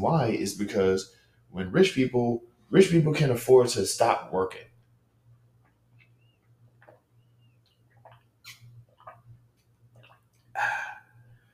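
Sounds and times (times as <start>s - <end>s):
speech: 0.0s - 4.7s
low steady hum: 0.0s - 11.5s
person drinking water, gulping and swallowing: 6.0s - 11.4s.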